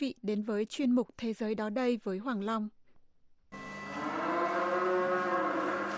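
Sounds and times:
speech: 0:00.0 - 0:02.8
dairy cow mooing on a farm in northwestern Bosnia and Herzegovina: 0:03.6 - 0:05.9.

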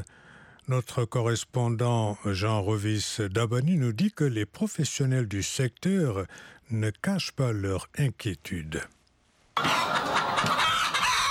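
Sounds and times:
speech: 0:00.7 - 0:09.0, 0:09.6 - 0:10.0
chickens clucking on a small poultry farm in Gabon: 0:09.6 - 0:11.2.

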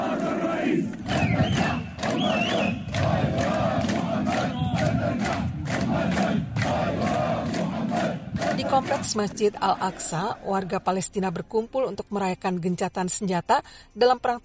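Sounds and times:
huge outdoor crowd chanting in the streets: 0:00.0 - 0:10.9
whistles: 0:01.0 - 0:02.9
speech: 0:09.1 - 0:14.4.

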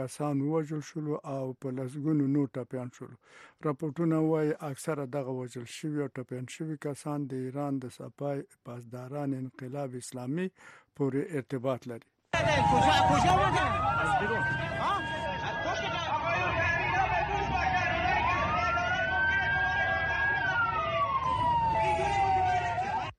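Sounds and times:
speech: 0:00.0 - 0:15.1
ambulance siren wailing after a deadly attack in Iran: 0:12.4 - 0:23.1
traffic: 0:12.4 - 0:23.1.

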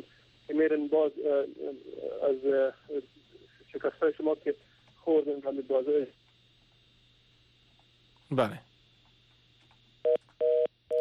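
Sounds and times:
speech: 0:00.0 - 0:06.2, 0:08.3 - 0:08.7
faint low hum: 0:00.0 - 0:10.9
telephone busy tone beeps after a call is cut off: 0:10.1 - 0:10.9.

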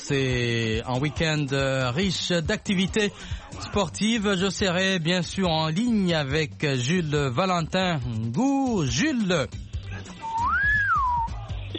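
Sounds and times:
speech: 0:00.1 - 0:10.2
whistle blast: 0:10.2 - 0:11.4.

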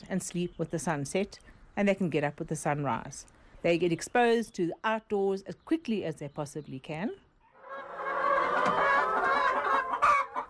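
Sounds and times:
speech: 0:00.1 - 0:07.2
flock of laying hens clucking on a farm: 0:07.4 - 0:10.4.

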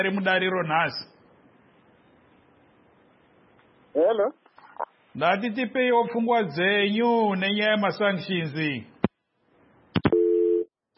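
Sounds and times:
speech: 0:00.0 - 0:01.1, 0:04.0 - 0:04.4, 0:05.2 - 0:08.9
telephone busy tone on a call-in line after a dropped call: 0:10.1 - 0:10.7.

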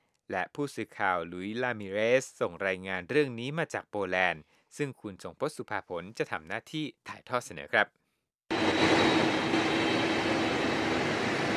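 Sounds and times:
speech: 0:00.3 - 0:08.0
large presidential jet aircraft engines roaring: 0:08.5 - 0:11.5.

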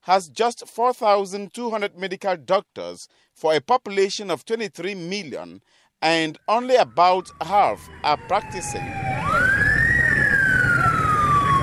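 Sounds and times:
speech: 0:00.0 - 0:09.2
ambulance siren wailing as it rushes to a general hospital in Yaoundé, Cameroon: 0:06.4 - 0:11.6.

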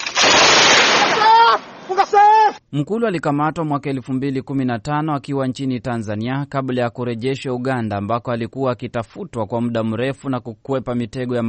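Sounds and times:
heavy-weapons gunfire during a military exercise in a forest in the DRC: 0:00.0 - 0:01.2
speech: 0:02.7 - 0:11.4.

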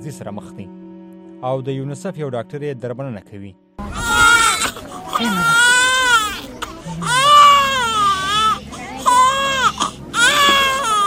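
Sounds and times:
speech: 0:00.0 - 0:00.8, 0:01.4 - 0:04.0, 0:05.2 - 0:05.7
malnourished children crying: 0:03.8 - 0:11.0.

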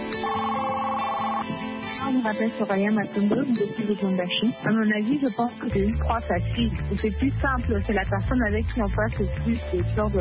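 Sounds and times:
telephone ringing over a phone line: 0:00.1 - 0:01.6
speech: 0:02.2 - 0:10.1.

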